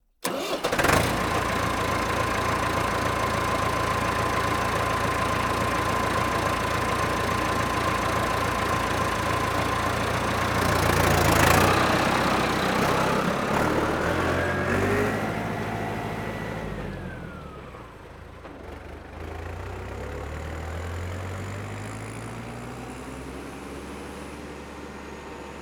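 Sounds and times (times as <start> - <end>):
Massey-Ferguson 3060E tractor engine starting: 0.2 - 19.9
Massey-Ferguson 3060E tractor driving away: 0.2 - 25.6.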